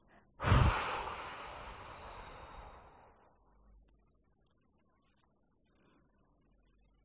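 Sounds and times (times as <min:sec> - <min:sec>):
strong breath blown out through the mouth: 0:00.4 - 0:03.0.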